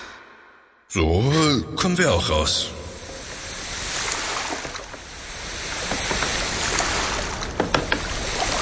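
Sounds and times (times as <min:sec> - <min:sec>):
speech: 0:00.9 - 0:02.8
water rushing and splashing around a moving boat: 0:02.9 - 0:08.6.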